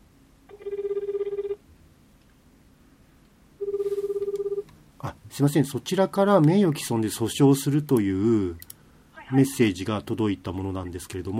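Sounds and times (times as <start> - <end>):
faint hiss: 0.0 - 11.3
telephone ringback tone of a call to a law office: 0.5 - 1.6, 3.6 - 4.7
speech: 5.4 - 8.7, 9.3 - 11.3.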